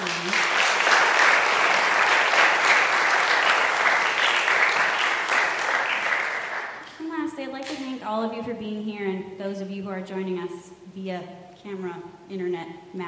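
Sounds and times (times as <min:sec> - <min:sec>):
audience applauding for a bell choir: 0:00.0 - 0:07.1
speech: 0:08.5 - 0:13.0.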